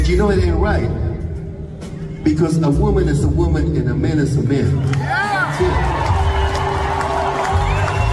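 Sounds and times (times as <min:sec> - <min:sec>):
speech: 0:00.1 - 0:01.1, 0:02.2 - 0:06.1
large crowd cheering and shouting: 0:04.7 - 0:08.1
loud whoops: 0:05.0 - 0:08.1.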